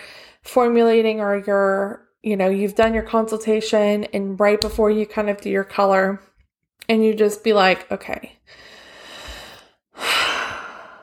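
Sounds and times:
speech: 0:00.5 - 0:06.3, 0:06.9 - 0:08.7
deep breath in and out: 0:08.5 - 0:11.0.

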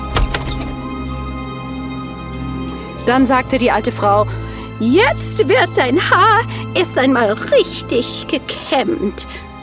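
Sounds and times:
door opening with a low thud: 0:00.0 - 0:01.0
speech: 0:03.1 - 0:09.5.

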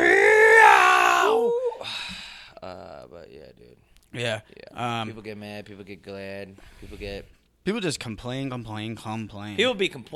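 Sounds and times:
person's exaggerated cartoonish pained scream: 0:00.0 - 0:01.9
speech: 0:03.1 - 0:10.1.

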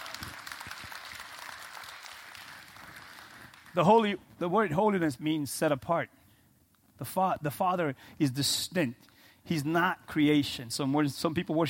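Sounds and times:
crowd clapping: 0:00.0 - 0:04.0
speech: 0:03.8 - 0:06.2, 0:07.0 - 0:11.6.

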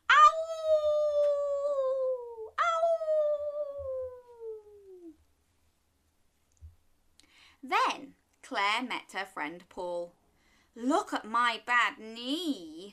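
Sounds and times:
human voice imitating a wolf howling: 0:00.1 - 0:05.2
speech: 0:08.5 - 0:10.2, 0:10.8 - 0:12.9.

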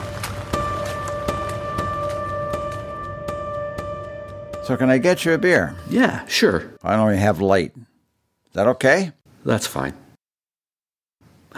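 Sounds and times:
steady rain hissing: 0:00.0 - 0:02.9
speech: 0:04.7 - 0:07.9, 0:08.5 - 0:10.0.

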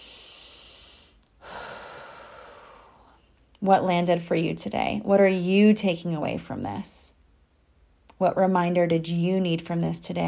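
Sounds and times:
slow deep breath during a guided reflection: 0:00.0 - 0:03.4
speech: 0:03.6 - 0:07.2, 0:08.2 - 0:10.2.

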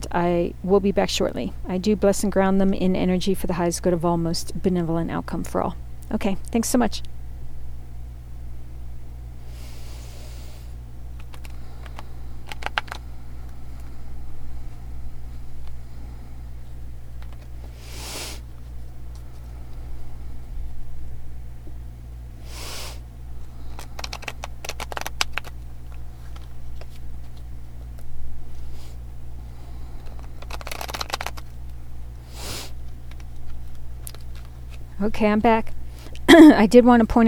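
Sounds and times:
steady low hum: 0:00.0 - 0:37.2
speech: 0:00.1 - 0:07.2, 0:35.0 - 0:35.8, 0:36.4 - 0:37.2
deck of tarot cards being shuffled: 0:11.2 - 0:14.0, 0:17.2 - 0:20.0, 0:23.4 - 0:29.0, 0:29.9 - 0:34.9.

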